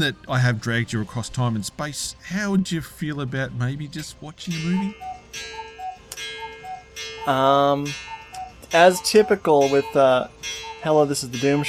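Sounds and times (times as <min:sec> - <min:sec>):
speech: 0:00.0 - 0:05.6, 0:07.2 - 0:08.1, 0:08.7 - 0:11.6
cuckoo clock ticking: 0:00.0 - 0:11.6
cuckoo clock sounding a sustained tonal note: 0:02.3 - 0:11.6.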